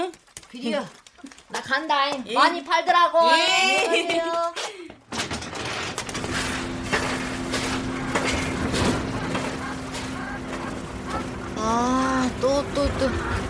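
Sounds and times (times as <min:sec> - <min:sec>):
speech: 0:00.0 - 0:04.7, 0:11.6 - 0:13.4
heavy construction crane bangs and clanks: 0:05.1 - 0:11.5
construction crane engine drone: 0:06.2 - 0:13.4.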